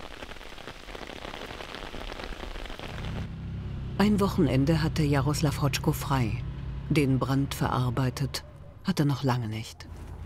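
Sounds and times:
steady rain pouring down: 0.0 - 5.4
speech: 4.0 - 10.0.

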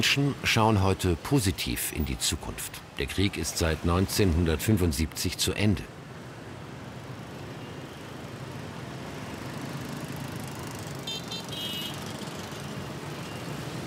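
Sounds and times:
speech: 0.0 - 6.0
dense roar of scooters and cars on a busy city street: 0.0 - 13.8.

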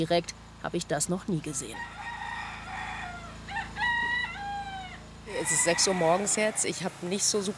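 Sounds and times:
speech: 0.0 - 2.1, 5.4 - 7.5
steady low hum: 0.0 - 7.5
rooster crowing: 1.5 - 6.8.

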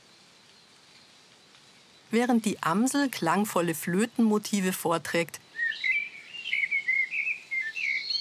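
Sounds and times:
European robin singing: 1.9 - 8.1
speech: 2.1 - 5.4.

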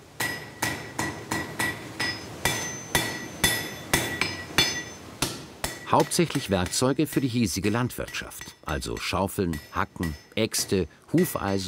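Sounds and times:
blacksmith hammer striking anvil on stone base in rock forge in Val di Rabi: 0.2 - 11.6
speech: 5.9 - 11.6.

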